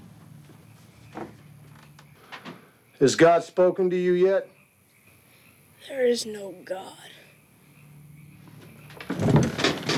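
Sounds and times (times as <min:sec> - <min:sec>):
speech: 0:01.2 - 0:01.4, 0:03.0 - 0:04.6, 0:05.9 - 0:07.2
door being pushed shut and locked: 0:09.0 - 0:09.9.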